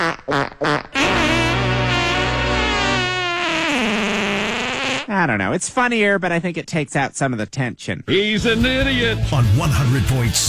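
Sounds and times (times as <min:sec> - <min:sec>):
loud sustained fart sound effect: 0:00.0 - 0:05.1
speech: 0:00.1 - 0:00.9, 0:05.2 - 0:10.4.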